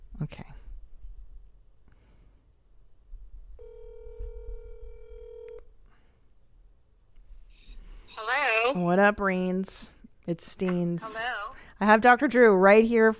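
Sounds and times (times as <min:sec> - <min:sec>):
speech: 0:00.2 - 0:00.5, 0:08.7 - 0:13.1
electronic phone tone: 0:03.6 - 0:05.6.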